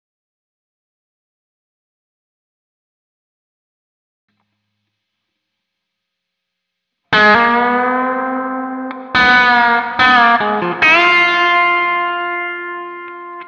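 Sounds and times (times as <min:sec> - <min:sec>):
intro guitar lick: 0:07.1 - 0:13.4.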